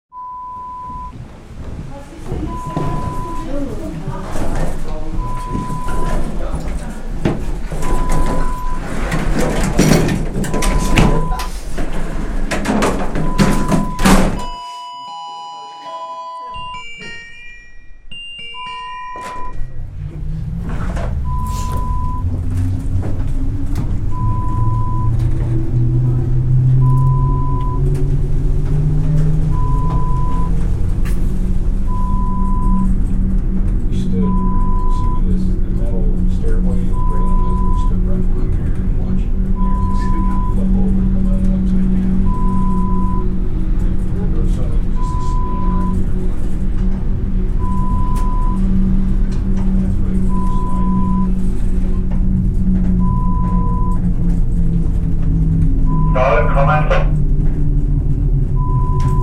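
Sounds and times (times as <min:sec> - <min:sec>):
cable car: 0:00.2 - 0:14.2, 0:18.5 - 0:59.2.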